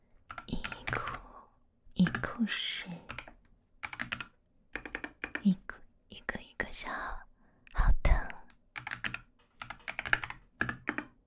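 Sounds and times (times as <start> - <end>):
typing a note on a computer keyboard: 0.2 - 1.2, 2.0 - 2.4, 3.1 - 5.6, 8.2 - 11.2
speech: 2.4 - 3.0.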